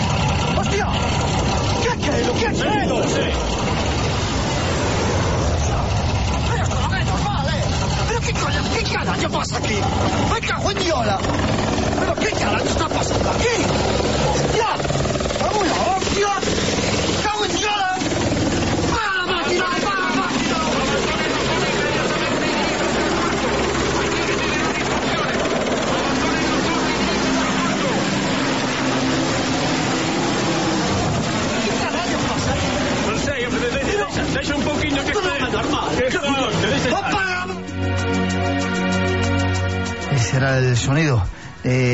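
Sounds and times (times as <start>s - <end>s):
helicopters and airplanes flying overhead: 0.0s - 41.9s
indistinct voices talking: 0.0s - 41.9s.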